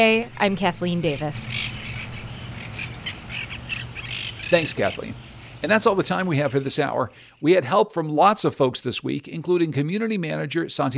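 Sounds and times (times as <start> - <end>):
speech: 0.0 - 1.7, 4.5 - 10.9
steady low rumble: 0.0 - 7.3
flock of parrots squawking: 1.0 - 6.6.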